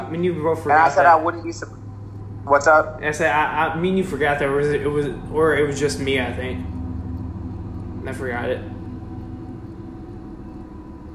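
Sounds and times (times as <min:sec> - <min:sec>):
faint mechanical hum: 0:00.0 - 0:11.1
train rumbling past: 0:00.0 - 0:11.1
speech: 0:00.1 - 0:01.8, 0:02.4 - 0:06.8, 0:08.0 - 0:08.7.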